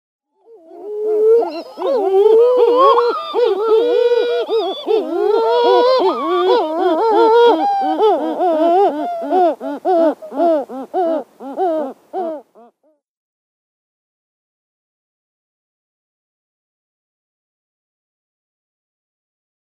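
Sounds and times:
Great Shearwater calling: 0:00.4 - 0:12.7.

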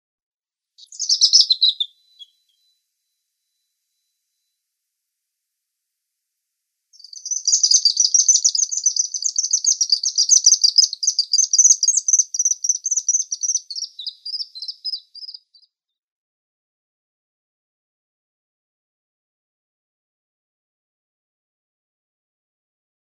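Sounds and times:
White-throated Needletail calling: 0:00.8 - 0:02.6, 0:07.0 - 0:15.4.

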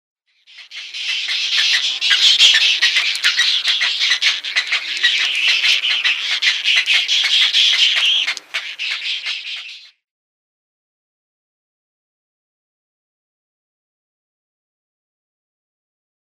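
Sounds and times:
Little Egret nestlings calling: 0:00.5 - 0:09.9.

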